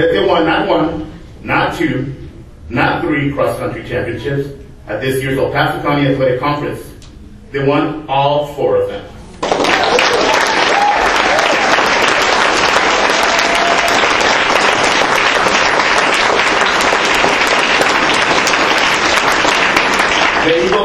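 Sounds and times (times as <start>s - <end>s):
speech: 0.0s - 6.9s, 7.5s - 9.7s
large crowd applauding: 9.4s - 20.8s.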